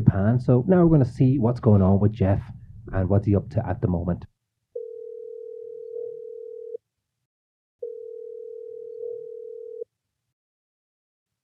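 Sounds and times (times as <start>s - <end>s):
speech: 0.0s - 4.3s
ringback tones from an outgoing phone call: 4.8s - 6.8s, 7.8s - 9.9s.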